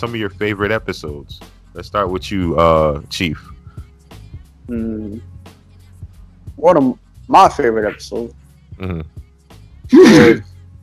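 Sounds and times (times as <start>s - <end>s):
speech: 0.0s - 3.6s, 4.7s - 5.3s, 6.6s - 9.1s, 9.9s - 10.5s
brief voiced murmur: 4.7s - 5.2s, 8.8s - 9.1s, 9.9s - 10.4s
loud sneeze: 9.9s - 10.4s.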